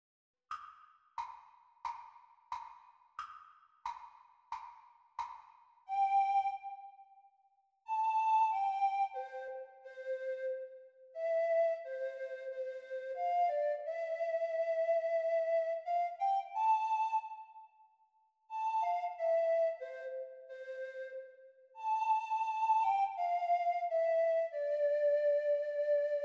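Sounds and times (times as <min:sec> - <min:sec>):
treble recorder played at practice speed: 0:05.2 - 0:07.3, 0:07.9 - 0:17.8, 0:18.5 - 0:26.2.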